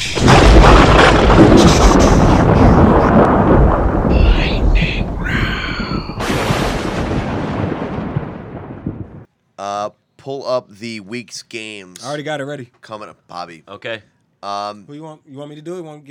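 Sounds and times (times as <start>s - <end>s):
thunder rumbling: 0.0s - 9.3s
speech: 10.6s - 16.0s.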